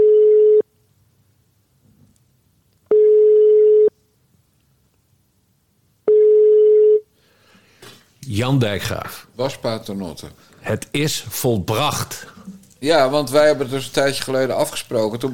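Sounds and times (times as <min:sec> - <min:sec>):
telephone line tones while a call is placed: 0:00.0 - 0:00.6, 0:02.9 - 0:03.9, 0:06.1 - 0:07.0
speech: 0:08.4 - 0:15.3.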